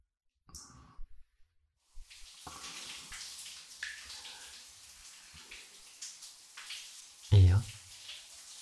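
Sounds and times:
shower water running: 0:01.8 - 0:08.6.

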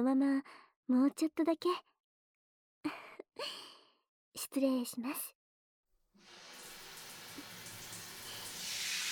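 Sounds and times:
speech: 0:00.0 - 0:01.9, 0:02.8 - 0:03.8, 0:04.4 - 0:05.4
water from a salon rinse spray washing shampoo out of hair: 0:06.2 - 0:09.1.

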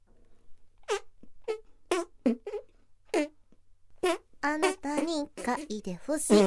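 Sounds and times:
squeaky tonal fart noises: 0:00.8 - 0:03.4, 0:04.0 - 0:06.4
speech: 0:04.6 - 0:06.4.

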